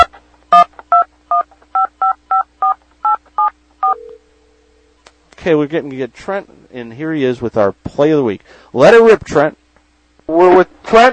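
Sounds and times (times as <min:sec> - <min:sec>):
faint hum: 0:00.0 - 0:11.1
touch-tone telephone dialing beeps: 0:00.9 - 0:04.2
speech: 0:05.5 - 0:09.6, 0:10.3 - 0:11.1.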